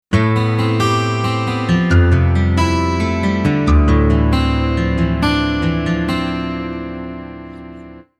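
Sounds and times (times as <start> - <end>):
boutique six-string guitar: 0.1 - 8.1.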